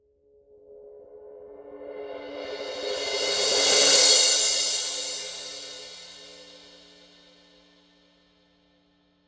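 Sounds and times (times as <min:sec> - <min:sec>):
crash cymbal roll: 0:01.9 - 0:07.5.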